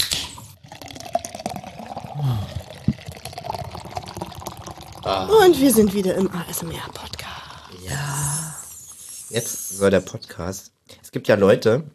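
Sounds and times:
drink being poured into a glass for a toast: 0:00.3 - 0:10.0
speech: 0:05.1 - 0:07.2, 0:09.3 - 0:11.9.

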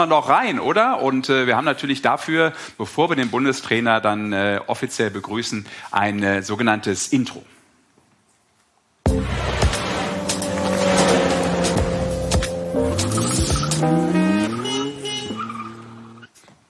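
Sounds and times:
speech: 0:00.0 - 0:07.6
car engine revving: 0:09.1 - 0:16.3
car tire squeals: 0:09.4 - 0:16.3.

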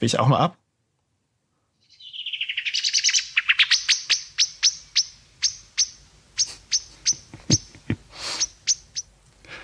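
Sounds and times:
speech: 0:00.0 - 0:00.6
common blackbird scolding alarm call: 0:01.8 - 0:09.1
laughter: 0:07.0 - 0:08.4.

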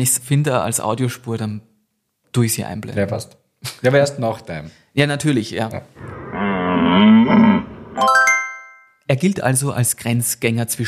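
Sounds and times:
speech: 0:00.0 - 0:01.7, 0:02.3 - 0:06.2, 0:06.9 - 0:08.2, 0:09.1 - 0:10.8
human voice imitating a red deer stag's roar: 0:06.0 - 0:08.0.

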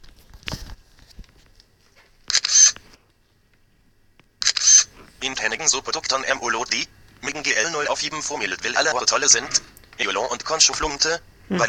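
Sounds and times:
camera shutter of a text-reading device clicking: 0:02.3 - 0:02.8, 0:04.4 - 0:04.9
speech: 0:05.2 - 0:11.6.

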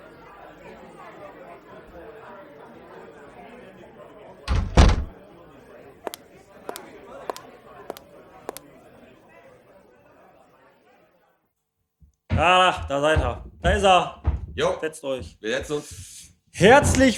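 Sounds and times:
door banging open with a double thud: 0:04.5 - 0:05.1, 0:13.1 - 0:14.8
knock on door: 0:04.5 - 0:05.1, 0:12.3 - 0:15.8
speech: 0:12.4 - 0:17.1.

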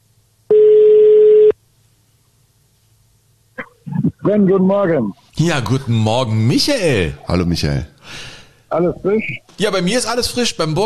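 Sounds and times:
telephone ringback tone on an outgoing mobile phone call: 0:00.5 - 0:01.5
speech: 0:04.2 - 0:10.8.

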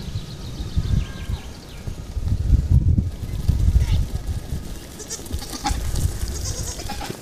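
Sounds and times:
herd of goats hooves trampling past: 0:02.0 - 0:07.2
goats bleating faintly: 0:05.0 - 0:07.2.

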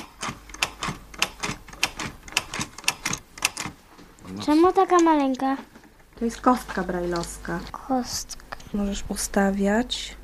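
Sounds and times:
mechanical keys on a Braille typewriter clacking: 0:00.0 - 0:03.8
speech: 0:04.3 - 0:10.2.

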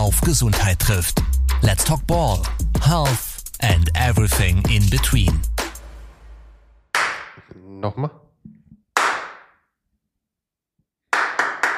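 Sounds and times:
speech: 0:00.1 - 0:05.6, 0:07.8 - 0:08.2
hand claps to sync cameras: 0:06.9 - 0:07.5, 0:08.9 - 0:09.6, 0:11.0 - 0:11.7.

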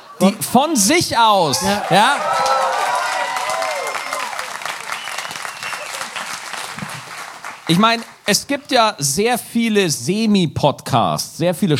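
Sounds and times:
speech: 0:00.2 - 0:02.5, 0:07.7 - 0:11.7
live audience whoops and cheers: 0:01.5 - 0:06.4
live audience clapping in Osnabrück: 0:01.5 - 0:08.8.

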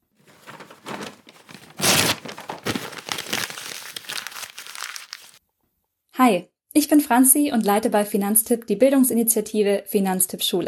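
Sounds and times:
wrapping paper crinkling and tearing as a gift is unwrapped: 0:00.2 - 0:05.4
speech: 0:06.2 - 0:10.6.

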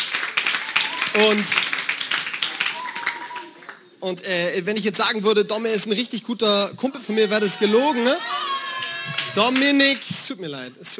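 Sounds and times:
brief cheers: 0:00.0 - 0:03.8, 0:07.0 - 0:10.0
crowd applause with many hands clapping: 0:00.0 - 0:04.0, 0:08.0 - 0:10.0
speech: 0:01.2 - 0:01.8, 0:04.0 - 0:10.9.

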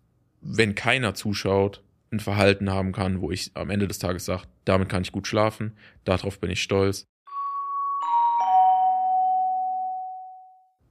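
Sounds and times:
speech: 0:00.4 - 0:07.1
doorbell chiming ding-dong: 0:07.3 - 0:10.8.

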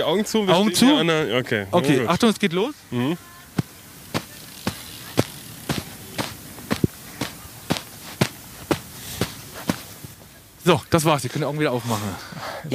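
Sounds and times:
speech: 0:00.0 - 0:03.3, 0:10.7 - 0:12.7
heavy footsteps stomping through sand of a long-jump pit on water-soaked legs: 0:03.5 - 0:10.2.

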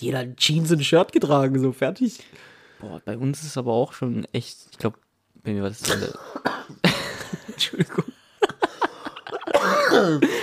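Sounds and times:
speech: 0:00.0 - 0:08.2, 0:09.9 - 0:10.4
stifled coughs: 0:05.8 - 0:07.4, 0:09.4 - 0:10.4
laughter: 0:06.9 - 0:10.4.

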